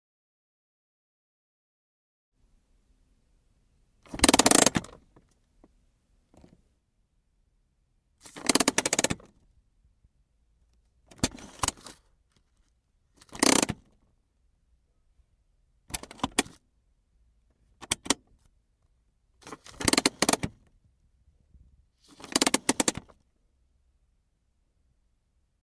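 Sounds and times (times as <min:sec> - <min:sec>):
car handbrake: 0:04.1 - 0:05.1, 0:08.4 - 0:09.3, 0:11.1 - 0:11.9, 0:13.2 - 0:13.9, 0:15.9 - 0:16.6, 0:17.8 - 0:18.2, 0:19.5 - 0:20.6, 0:22.2 - 0:23.2.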